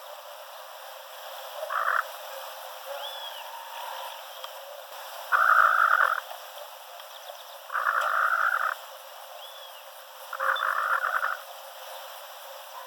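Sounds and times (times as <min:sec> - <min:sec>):
mangrove rail harsh pulsed chattering calls: 0:01.6 - 0:02.1, 0:02.9 - 0:11.5.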